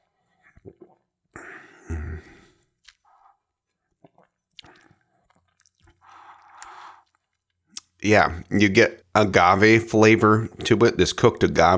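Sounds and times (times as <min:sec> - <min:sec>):
person sipping and slurping añejo tequila: 0:00.0 - 0:08.0
speech: 0:08.0 - 0:11.7.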